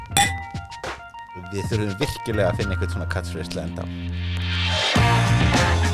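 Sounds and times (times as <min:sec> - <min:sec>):
glass clatter: 0:00.2 - 0:00.8
beer glasses clinking in a toast: 0:00.2 - 0:00.9
speech: 0:01.5 - 0:05.7.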